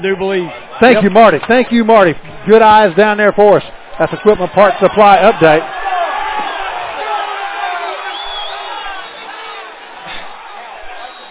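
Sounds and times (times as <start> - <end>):
speech: 0.0 - 5.8
huge stadium crowd at a football game screaming over an official's ruling: 4.0 - 11.2.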